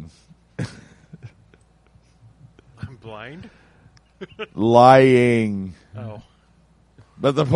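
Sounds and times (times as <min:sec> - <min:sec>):
man coughing heavily: 0:00.6 - 0:01.2
speech: 0:03.1 - 0:03.6, 0:04.2 - 0:06.3, 0:07.2 - 0:07.5.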